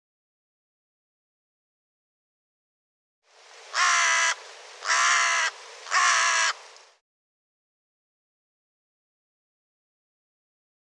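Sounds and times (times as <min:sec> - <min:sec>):
bird giving harsh caws: 0:03.7 - 0:06.6.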